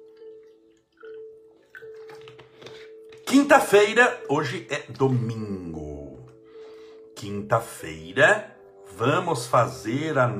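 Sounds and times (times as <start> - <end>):
water pouring into a small mug: 0.0 - 3.3
speech: 3.3 - 5.6, 7.3 - 10.3.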